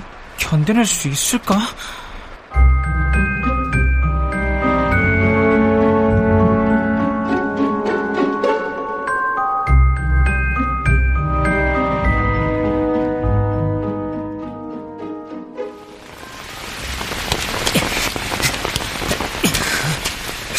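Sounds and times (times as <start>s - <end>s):
steady rain pattering on a surface: 0.0s - 5.4s, 15.8s - 20.5s
speech: 0.5s - 2.0s
sustained tonal music: 2.5s - 17.2s.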